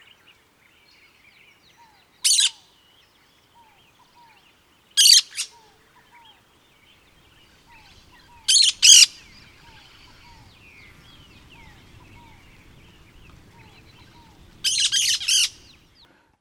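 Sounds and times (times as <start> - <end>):
cactus parakeet soft thin notes: 0.0 - 16.1
cactus parakeet giving harsh scratchy screech calls: 2.3 - 2.6, 5.0 - 5.5, 7.8 - 10.2, 14.6 - 15.7.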